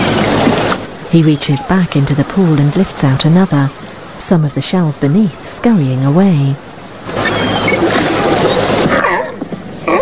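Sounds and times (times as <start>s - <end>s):
steady wash of surf: 0.0s - 10.0s
water splashing: 0.0s - 10.0s
speech: 1.1s - 7.4s
grey seals calling with howling moans: 7.3s - 10.0s.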